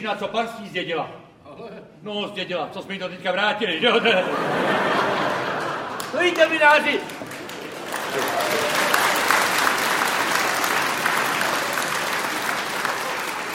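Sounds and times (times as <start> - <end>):
speech: 0.0 - 5.5, 6.1 - 7.4
laughter: 3.7 - 6.8
audience applauding: 4.5 - 13.5.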